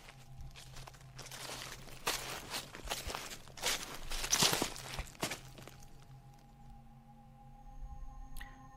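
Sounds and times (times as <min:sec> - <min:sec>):
footsteps crunching and rustling through dry leaves at night: 0:00.0 - 0:06.2
steady low tonal hum: 0:00.0 - 0:08.7.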